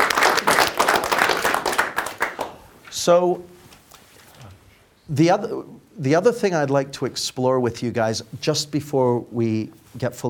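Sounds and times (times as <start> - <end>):
audience applause with many hands clapping: 0.0 - 2.6
speech: 3.0 - 3.5, 5.1 - 10.2.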